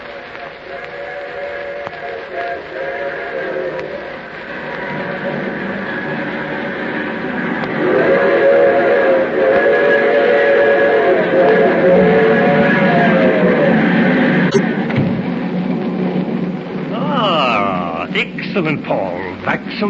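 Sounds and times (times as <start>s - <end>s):
train whistle: 0.0s - 14.8s
train rumbling: 0.0s - 19.8s.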